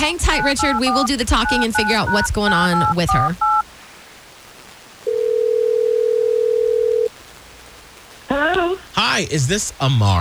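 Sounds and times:
speech: 0.0s - 3.6s, 9.2s - 10.2s
telephone ringing tone over a quiet line: 0.4s - 3.6s, 5.1s - 7.1s.

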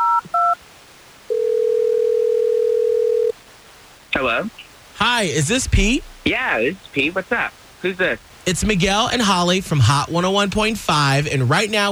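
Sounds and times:
dual-pitch telephone keypad beep: 0.0s - 0.6s
steady telephone dial tone: 0.0s - 0.6s, 1.3s - 3.3s
speech: 4.2s - 11.9s.

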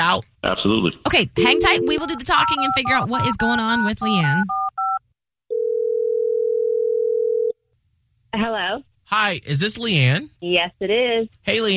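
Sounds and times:
speech: 0.0s - 4.7s, 8.4s - 11.7s
outgoing telephone ringing tone: 1.4s - 3.4s, 4.1s - 7.5s
telephone dialing beep: 1.4s - 5.0s.

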